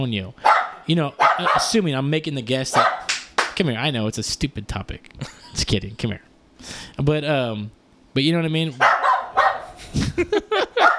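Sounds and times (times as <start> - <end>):
speech: 0.0 - 3.0, 3.6 - 9.0, 10.2 - 10.6
small angry dog yapping with high-pitched barks: 0.4 - 1.8, 2.7 - 3.1, 8.8 - 9.8, 10.8 - 10.9
laughter: 9.7 - 10.9.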